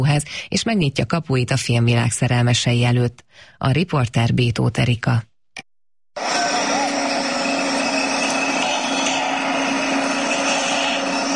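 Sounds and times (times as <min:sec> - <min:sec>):
speech: 0:00.0 - 0:05.3
power tools at a half-finished house construction site: 0:06.2 - 0:11.3
sawing at a half-finished house construction site: 0:06.2 - 0:11.3.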